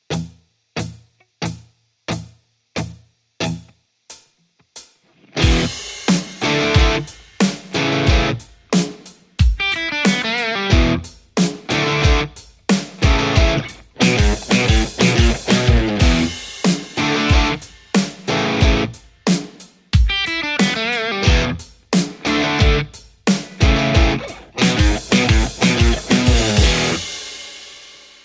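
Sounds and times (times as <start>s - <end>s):
electric guitar: 0.1s - 3.8s, 5.1s - 8.4s, 9.6s - 19.0s, 20.0s - 27.2s.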